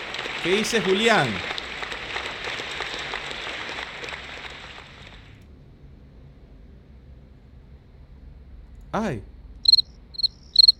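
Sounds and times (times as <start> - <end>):
crowd applause and celebratory cheering entrance sound effect: 0.0 - 5.4
speech: 0.4 - 1.5, 8.9 - 9.3.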